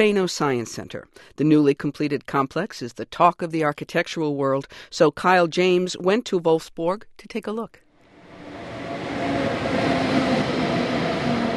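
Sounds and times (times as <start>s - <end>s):
speech: 0.0s - 7.8s
train rolling along rail tracks: 8.1s - 11.5s.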